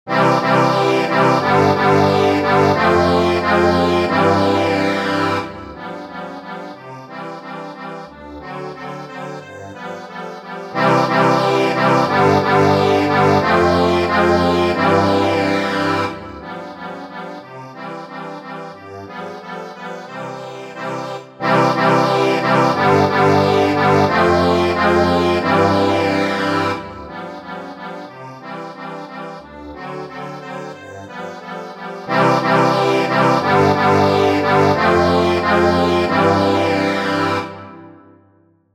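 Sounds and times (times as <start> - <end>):
accordion playing an entr'acte: 0.1 - 38.2.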